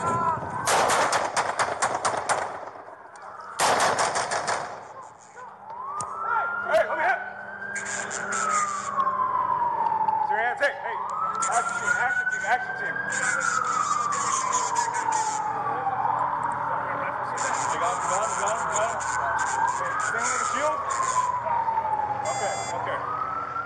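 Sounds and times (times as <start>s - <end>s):
wailing siren: 0.0s - 1.6s, 2.6s - 23.6s
gunshots in rapid bursts: 0.6s - 2.8s, 3.6s - 5.0s.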